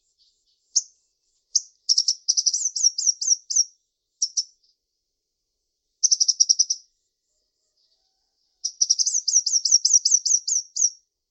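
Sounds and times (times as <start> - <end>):
bird song: 0.0 - 11.3.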